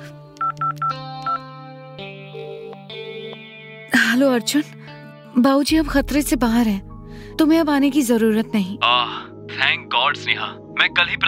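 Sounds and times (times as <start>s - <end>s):
bright tonal musical backing: 0.2s - 11.2s
phone keypad beeps as a woman dials a call: 0.4s - 1.4s
speech: 4.2s - 11.2s.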